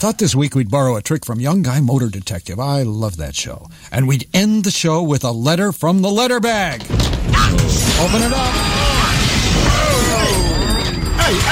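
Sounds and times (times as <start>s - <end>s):
speech: 0.0s - 9.0s
breaking glass sound effect with tinkling shards: 6.8s - 11.4s.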